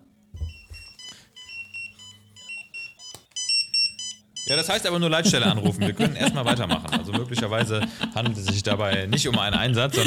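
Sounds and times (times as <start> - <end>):
emergency pager alert beeping: 0.4 - 4.8
speech: 4.5 - 10.0
laughter: 5.1 - 10.0.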